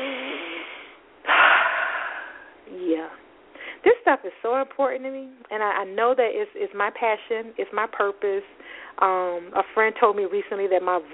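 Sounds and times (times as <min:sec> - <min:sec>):
deep breath: 0:00.0 - 0:02.6
speech: 0:04.1 - 0:11.1.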